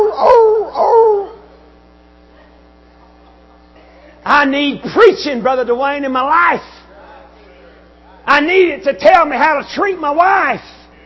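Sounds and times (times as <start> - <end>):
dog barking and howling: 0.0 - 1.5
speech: 4.4 - 6.8, 8.3 - 10.8.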